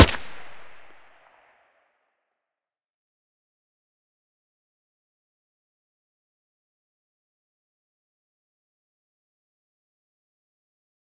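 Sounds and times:
AK-74U rifle with silencer firing: 0:00.0 - 0:00.9.

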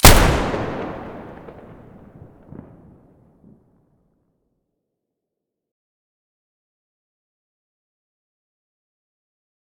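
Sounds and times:
M590 gun firing at the muzzle: 0:00.0 - 0:02.7.

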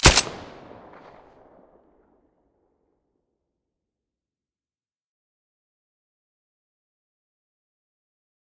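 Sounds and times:
M9A3 silenced gunshots: 0:00.0 - 0:01.3.

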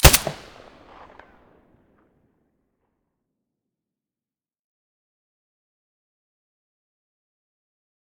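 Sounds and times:
Glock 17 pistol shots with silencer: 0:00.0 - 0:01.2.

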